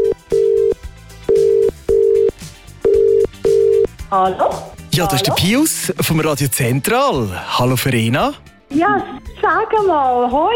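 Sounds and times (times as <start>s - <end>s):
telephone call-progress tones from an outgoing call dialing and ringing: 0.0s - 3.9s
speech: 4.1s - 10.5s.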